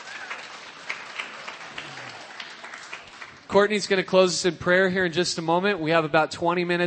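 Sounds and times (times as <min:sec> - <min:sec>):
audience applause: 0:00.0 - 0:03.8
speech: 0:03.5 - 0:06.8.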